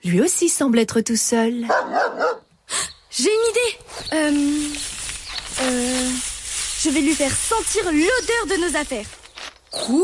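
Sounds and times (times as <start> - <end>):
speech: 0.0 - 4.9, 5.6 - 10.0
dog barking: 1.7 - 2.5.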